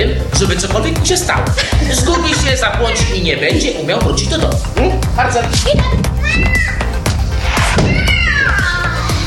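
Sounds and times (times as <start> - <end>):
speech: 0.4 - 6.8
laughter: 0.5 - 5.1
cat meowing: 6.2 - 6.9, 7.8 - 9.1.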